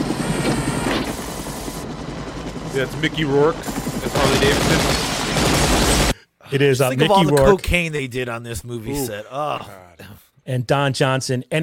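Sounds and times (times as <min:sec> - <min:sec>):
helicopter flying overhead with rotor thump and engine roar: 0:00.0 - 0:06.2
speech: 0:02.8 - 0:05.1, 0:06.5 - 0:11.6.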